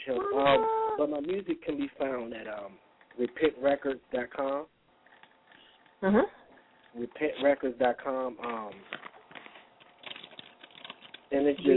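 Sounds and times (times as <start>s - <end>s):
speech: 0.0s - 4.8s, 6.0s - 9.1s, 11.3s - 11.7s
typing on a computer keyboard: 9.8s - 11.7s.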